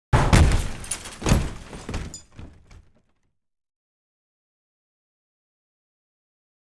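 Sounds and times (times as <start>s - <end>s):
medium glass impacts: 0.2s - 2.9s.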